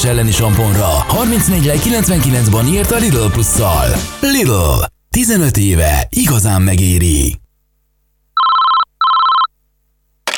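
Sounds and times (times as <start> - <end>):
speech: 0.0 - 7.4
telephone ringing in electronic bursts: 8.4 - 9.5.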